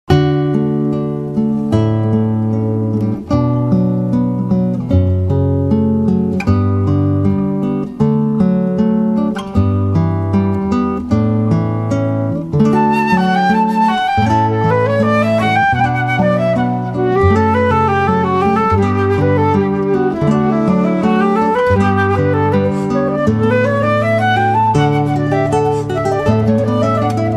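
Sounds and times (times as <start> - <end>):
guitar: 0.1 - 27.3
flute: 12.5 - 27.3.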